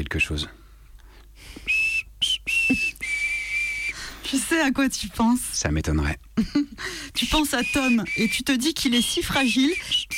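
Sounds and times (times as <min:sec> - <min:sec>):
speech: 0:00.1 - 0:00.6, 0:04.3 - 0:10.1
person whistling a simple tune: 0:01.6 - 0:04.0, 0:07.5 - 0:08.4, 0:09.0 - 0:10.1.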